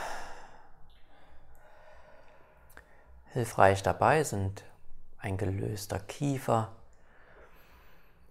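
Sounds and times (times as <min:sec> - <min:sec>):
deep breathing in and out during a guided relaxation exercise: 0:00.0 - 0:03.3, 0:06.9 - 0:08.2
faint steady hiss: 0:00.0 - 0:08.2
speech: 0:03.4 - 0:06.8.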